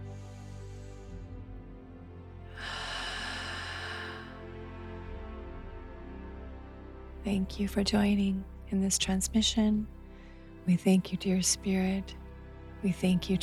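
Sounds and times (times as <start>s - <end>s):
slow deep breath at the close of a guided meditation: 2.5s - 4.4s, 10.0s - 10.6s
speech: 7.3s - 10.0s, 10.6s - 12.2s, 12.8s - 13.4s.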